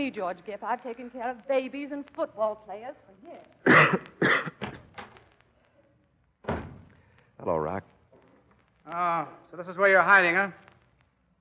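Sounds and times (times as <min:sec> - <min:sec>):
speech: 0:00.0 - 0:04.6, 0:07.4 - 0:07.9, 0:08.9 - 0:10.6
man coughing with hacking coughs: 0:03.6 - 0:04.7.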